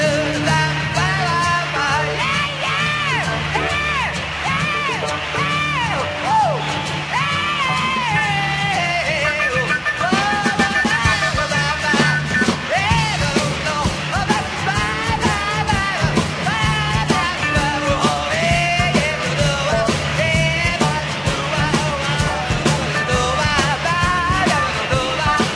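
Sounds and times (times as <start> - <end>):
audience cheering and yelling: 0.7 - 25.5.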